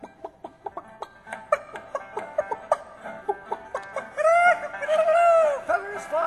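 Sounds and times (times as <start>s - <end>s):
chickens clucking: 0.0s - 4.9s
laughter: 0.0s - 6.2s.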